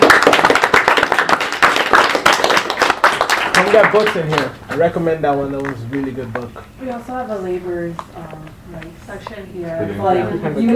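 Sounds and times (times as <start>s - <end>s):
small group clapping: 0.0s - 7.0s
speech: 3.8s - 10.7s.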